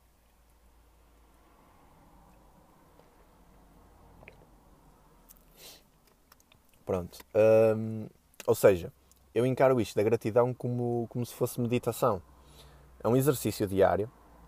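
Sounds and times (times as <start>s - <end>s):
steady low noise: 0.0s - 14.4s
soft slurping sip of water: 4.2s - 4.5s
speech: 6.9s - 12.3s, 13.0s - 14.2s.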